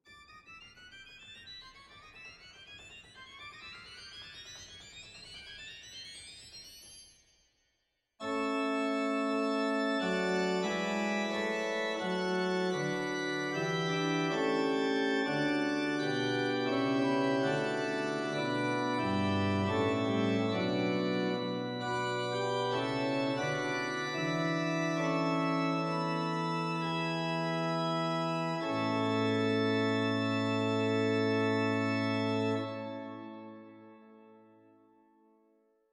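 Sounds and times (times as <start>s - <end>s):
pipe organ Borstwerk Mixtuur stop in Zwolle: 8.2s - 33.9s.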